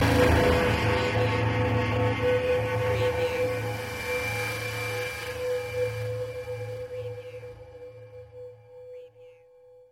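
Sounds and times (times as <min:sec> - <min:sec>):
scare piano: 0:00.0 - 0:08.8.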